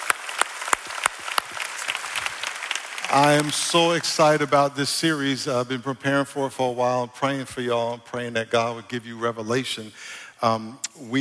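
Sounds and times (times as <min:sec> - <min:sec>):
church congregation applause: 0:00.0 - 0:04.6
speech: 0:03.1 - 0:11.2.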